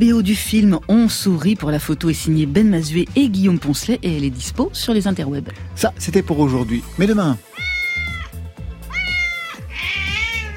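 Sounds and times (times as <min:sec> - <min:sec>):
speech: 0:00.0 - 0:08.1
cat meowing loudly: 0:07.4 - 0:10.5.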